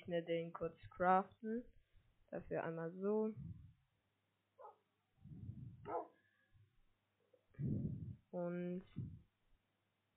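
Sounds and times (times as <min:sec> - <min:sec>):
speech: 0:00.1 - 0:03.6, 0:05.3 - 0:06.1, 0:07.6 - 0:09.2
video game wolf barking and yipping: 0:05.8 - 0:06.1.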